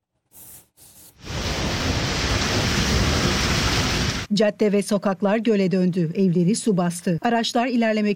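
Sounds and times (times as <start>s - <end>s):
heavy downpour rain during a storm: 1.2s - 4.3s
speech: 4.4s - 8.1s.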